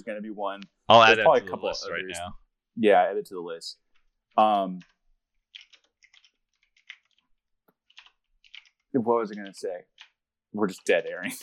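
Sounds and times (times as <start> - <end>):
speech: 0.0 - 3.8, 4.4 - 4.9, 8.9 - 11.4
typing on a computer keyboard: 5.5 - 10.2.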